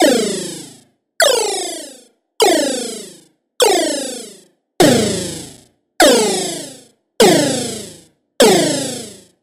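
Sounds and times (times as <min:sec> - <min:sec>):
laser shot sound effect: 0:01.2 - 0:09.3.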